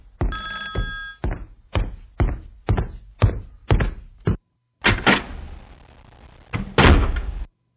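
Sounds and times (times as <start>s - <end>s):
quick run of thudding footsteps: 0.0s - 4.4s
door shut with a solid thunk: 6.6s - 7.3s.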